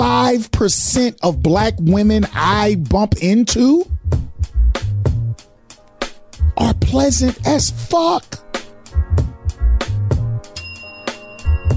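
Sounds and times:
beat-driven music bed with percussive hits: 0.0 - 11.7
speech: 0.3 - 4.0, 6.6 - 8.4
bell ringing: 10.6 - 11.7.

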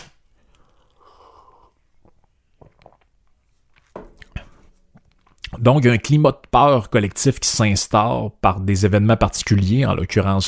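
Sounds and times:
person sipping coffee: 0.4 - 5.5
faint swallowing and small mouth sounds: 0.5 - 5.5
speech: 5.6 - 10.4.

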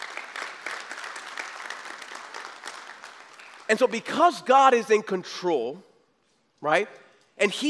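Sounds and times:
audience clapping: 0.0 - 4.4
speech: 3.7 - 5.9, 6.6 - 7.6.

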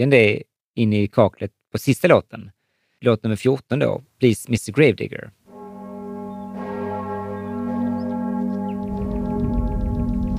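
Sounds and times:
speech: 0.0 - 5.4
church bells ringing: 5.5 - 10.3
rough rumbling texture: 8.2 - 10.3.

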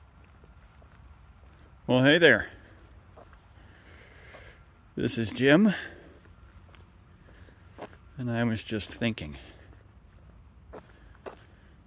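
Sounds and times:
footsteps on an outdoor walk on a gray damp January morning: 0.0 - 11.8
speech: 1.9 - 2.6, 5.0 - 6.0, 8.2 - 9.5.

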